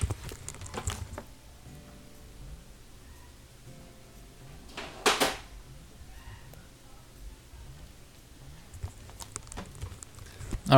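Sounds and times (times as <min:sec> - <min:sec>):
faint low hum: 0:00.0 - 0:10.7
back door being opened: 0:04.5 - 0:06.5.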